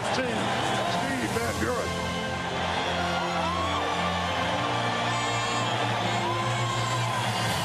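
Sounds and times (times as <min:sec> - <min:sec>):
big stadium crowd cheering and applauding: 0:00.0 - 0:07.6
whoops and yells: 0:02.4 - 0:07.6.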